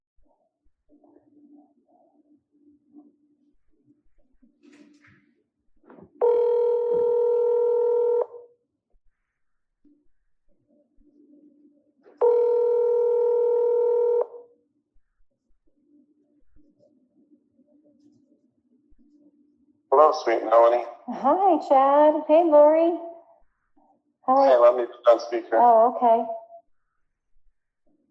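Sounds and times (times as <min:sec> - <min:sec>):
outgoing phone call ringback tone: 0:06.2 - 0:08.4, 0:12.2 - 0:14.4
speech: 0:19.9 - 0:23.1, 0:24.3 - 0:26.4.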